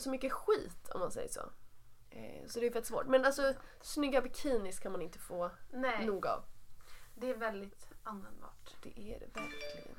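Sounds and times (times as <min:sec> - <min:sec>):
speech: 0:00.0 - 0:06.5, 0:07.2 - 0:09.9
phone notification chime: 0:09.4 - 0:09.9.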